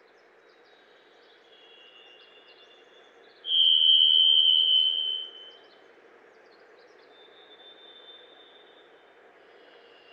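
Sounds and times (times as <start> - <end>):
Varied Thrush singing a whistled note in western North America: 3.5 - 5.4.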